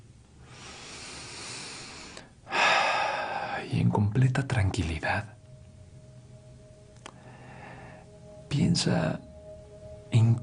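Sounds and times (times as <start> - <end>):
deep breath in: 0.4 - 3.6, 7.1 - 8.1
speech: 3.8 - 5.4, 8.6 - 9.3, 10.1 - 10.4.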